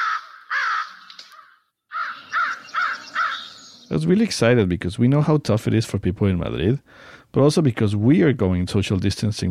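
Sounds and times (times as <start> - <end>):
American crow cawing: 0.0 - 3.9
speech: 3.9 - 9.4.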